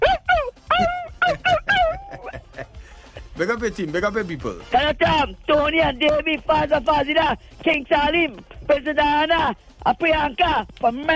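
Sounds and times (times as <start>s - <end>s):
person imitating dog barking and whimpering: 0.0s - 2.3s
laughter: 0.0s - 3.4s
speech: 3.4s - 11.1s.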